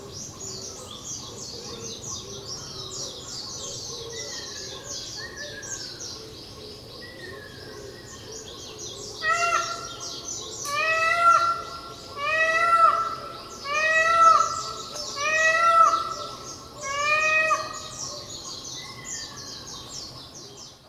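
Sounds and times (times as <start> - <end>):
Indian peafowl calling on Miyakojima: 9.2 - 18.3.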